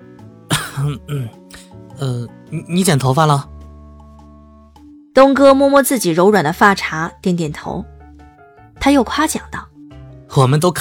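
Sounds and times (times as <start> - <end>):
man coughing to clear his throat: 0.5 - 1.7
speech: 0.8 - 1.4, 2.0 - 3.5, 5.2 - 7.9, 8.8 - 9.7, 10.3 - 10.7.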